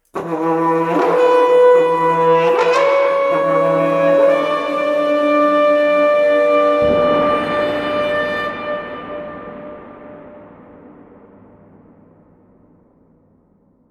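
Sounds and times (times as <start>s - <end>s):
cornu ensemble playing: 0.1s - 9.3s.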